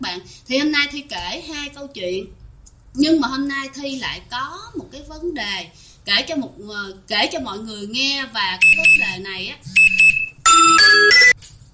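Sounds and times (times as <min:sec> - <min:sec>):
speech: 0:00.0 - 0:09.8
alarm clock electronic ringtone melody: 0:08.6 - 0:09.1, 0:09.8 - 0:11.4.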